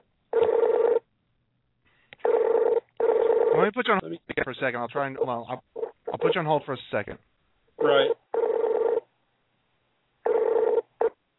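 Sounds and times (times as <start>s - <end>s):
tablet electronic call ringtone: 0.4s - 1.0s, 2.2s - 3.6s, 7.8s - 9.1s, 10.3s - 11.2s
speech: 3.6s - 8.2s.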